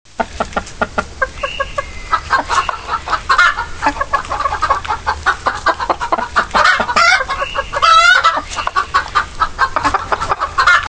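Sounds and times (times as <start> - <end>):
chickens: 0.1 - 10.9.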